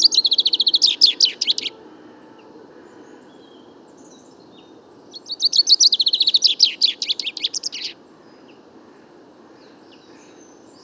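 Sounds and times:
Common chaffinch courtship song in a wood during fine weather: 0:00.0 - 0:08.0.

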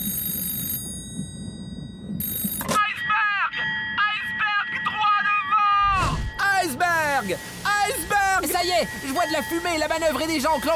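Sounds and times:
alarm bell ringing: 0:00.0 - 0:10.7
speech: 0:07.3 - 0:08.0, 0:08.6 - 0:10.7.

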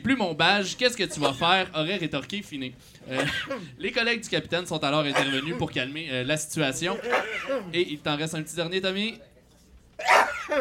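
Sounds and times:
speech: 0:00.0 - 0:09.3, 0:10.0 - 0:10.6
loud sneeze: 0:03.1 - 0:03.7, 0:05.1 - 0:05.6, 0:07.0 - 0:07.7, 0:10.0 - 0:10.6.

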